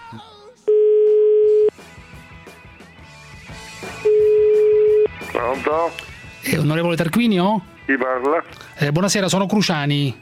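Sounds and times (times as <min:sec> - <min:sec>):
music: 0:00.0 - 0:10.1
speech: 0:00.1 - 0:00.4, 0:05.4 - 0:10.1
ringback tone of an outgoing telephone call placed from Italy: 0:00.7 - 0:01.7, 0:04.1 - 0:05.2.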